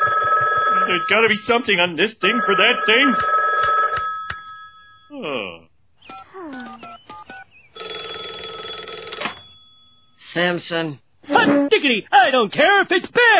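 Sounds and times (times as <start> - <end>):
telephone ringing in electronic bursts: 0.0 - 5.1, 6.1 - 10.2
speech: 1.0 - 3.7, 10.4 - 13.3.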